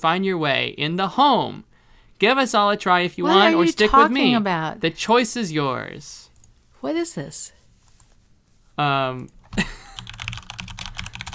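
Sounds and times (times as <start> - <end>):
speech: 0.0 - 6.2, 6.8 - 7.6, 8.8 - 10.1
typing on a computer keyboard: 9.9 - 11.3.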